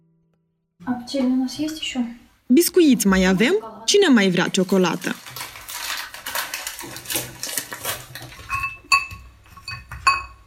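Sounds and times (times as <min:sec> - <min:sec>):
speech: 0:00.8 - 0:05.4
porcelain cups of herbal tea clinking together in a family apartment kitchen in Chișinău: 0:04.4 - 0:10.4
soft rustling and clattering: 0:04.6 - 0:10.4.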